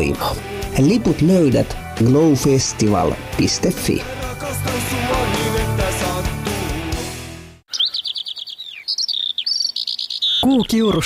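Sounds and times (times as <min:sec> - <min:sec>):
speech: 0:00.0 - 0:04.8, 0:10.5 - 0:11.0
full music: 0:00.0 - 0:07.6
small songbirds twittering in quick high chirps: 0:07.7 - 0:11.0.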